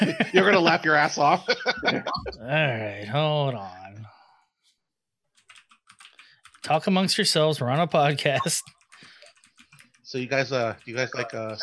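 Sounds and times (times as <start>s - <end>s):
speech: 0.0s - 3.8s, 6.6s - 8.8s, 10.1s - 11.6s
laughter: 0.0s - 4.0s, 6.7s - 8.6s, 10.2s - 11.6s
typing on a computer keyboard: 5.4s - 6.8s, 8.8s - 11.6s.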